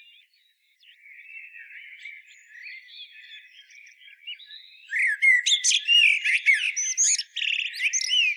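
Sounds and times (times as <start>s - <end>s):
common blackbird Turdus merula singing: 0.0s - 8.3s.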